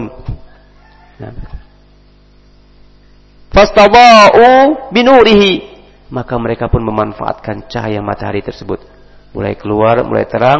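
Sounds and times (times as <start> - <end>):
faint steady hum: 0.0 - 10.5
rooster crowing at dawn: 0.4 - 1.9
speech: 1.2 - 1.6, 3.6 - 10.5.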